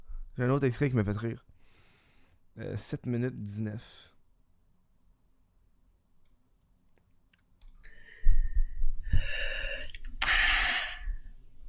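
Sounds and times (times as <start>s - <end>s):
speech: 0.4s - 1.5s, 2.6s - 4.1s
woman in pain blowing out her breath with mouth wide open: 8.1s - 11.3s.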